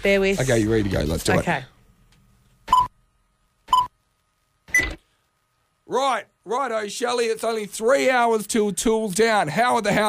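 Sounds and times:
speech: 0.0s - 1.7s, 5.9s - 10.0s
short electronic beeps of an intro: 3.7s - 3.9s.

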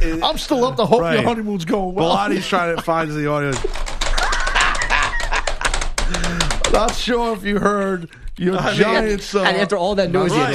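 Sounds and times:
laughter: 0.0s - 9.2s
speech: 0.2s - 3.9s, 6.1s - 10.5s
rapid typing on a keyboard: 2.6s - 8.4s.

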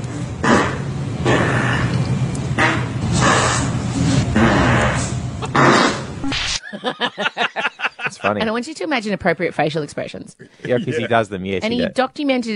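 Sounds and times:
fart: 0.4s - 1.9s, 2.6s - 6.6s
laughter: 6.6s - 8.5s, 10.4s - 11.9s
speech: 8.2s - 12.5s.

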